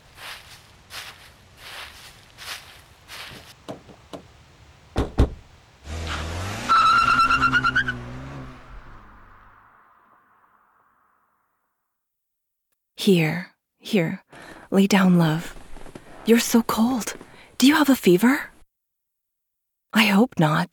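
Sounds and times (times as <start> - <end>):
footsteps crunching: 0.0 - 4.4, 14.4 - 18.6
sharp thumps: 5.0 - 6.2
car engine roaring to life: 5.4 - 10.2
car tires squealing as it speeds away: 5.8 - 9.6
speech: 13.0 - 15.6, 16.2 - 18.5, 19.9 - 20.7.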